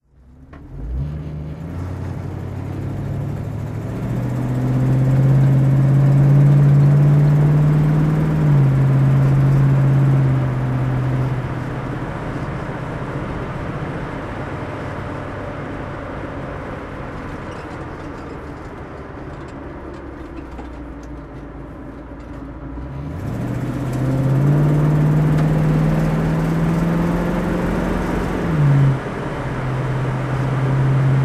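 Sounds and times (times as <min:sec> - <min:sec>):
Ford Mustang convertible driving: 0:00.0 - 0:31.2.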